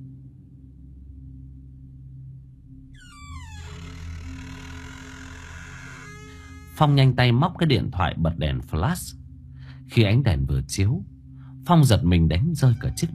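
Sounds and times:
toilet door creaking: 0:03.0 - 0:07.2, 0:12.6 - 0:13.1
speech: 0:06.8 - 0:09.2, 0:09.9 - 0:13.1.

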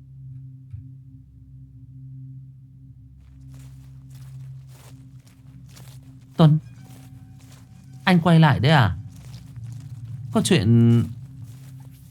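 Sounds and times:
faint shuffling footsteps outside: 0:03.2 - 0:12.0
speech: 0:06.4 - 0:06.7, 0:08.1 - 0:09.0, 0:10.3 - 0:11.2.

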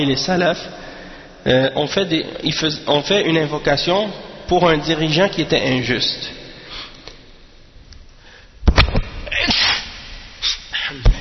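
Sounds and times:
speech: 0:00.0 - 0:06.4
sneeze: 0:09.3 - 0:11.1.

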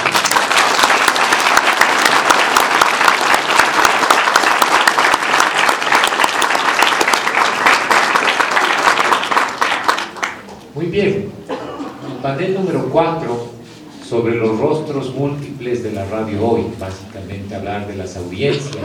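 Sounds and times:
audience applause at a panel event: 0:00.0 - 0:10.5
speech: 0:12.3 - 0:13.5, 0:14.1 - 0:18.8.

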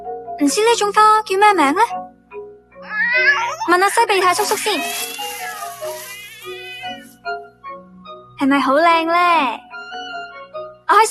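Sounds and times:
speech: 0:00.4 - 0:02.1, 0:03.2 - 0:05.2, 0:08.4 - 0:09.6, 0:10.9 - 0:11.0
cartoon cat meowing: 0:02.8 - 0:07.1.

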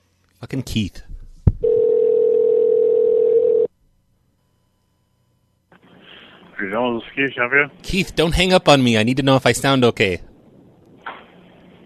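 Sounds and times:
speech: 0:00.4 - 0:01.1, 0:06.6 - 0:10.3
telephone dial tone while a call is dialed back: 0:01.6 - 0:03.7.

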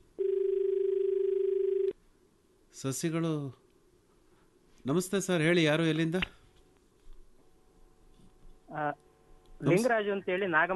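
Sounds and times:
telephone line tone signalling an incoming call: 0:00.2 - 0:01.9
quiet hiss: 0:01.7 - 0:10.7
speech: 0:02.8 - 0:03.6, 0:04.8 - 0:06.4, 0:09.6 - 0:10.7.

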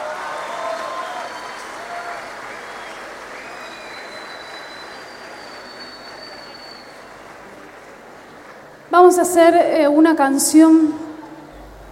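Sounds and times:
audience applause at a folk music gathering in Córdoba: 0:00.0 - 0:08.9
speech: 0:08.9 - 0:11.0.

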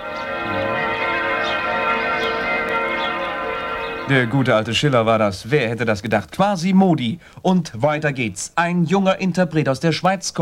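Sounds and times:
church bell ringing in an instrumental live music recording: 0:00.0 - 0:05.8
speech: 0:04.1 - 0:10.4.

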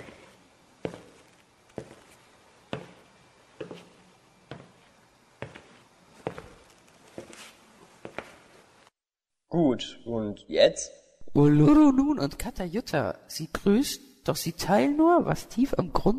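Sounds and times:
footsteps of someone walking on a moor: 0:00.0 - 0:08.5
speech: 0:09.6 - 0:16.1.

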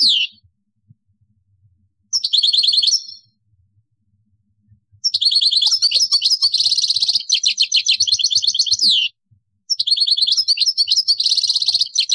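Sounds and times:
European goldfinch song: 0:00.0 - 0:00.5, 0:02.1 - 0:03.4, 0:04.9 - 0:12.1.

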